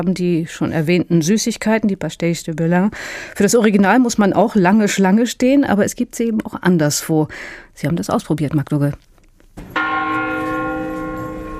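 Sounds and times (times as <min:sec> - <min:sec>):
speech: 0:00.0 - 0:09.7
bell of an old Cistercian monastery in a Portuguese town ringing: 0:09.8 - 0:11.5.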